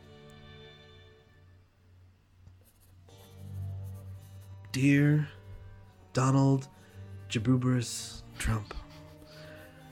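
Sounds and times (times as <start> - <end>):
pen scratching across paper writing a letter: 2.6 - 9.9
speech: 4.7 - 5.4, 6.1 - 8.8.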